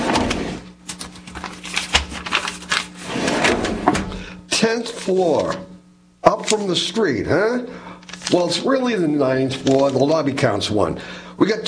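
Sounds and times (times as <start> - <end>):
large paper chart rustling and crinkling as it is unfolded: 0.2 - 3.6, 8.0 - 8.5, 9.5 - 10.2
speech: 4.6 - 5.7, 6.4 - 11.6.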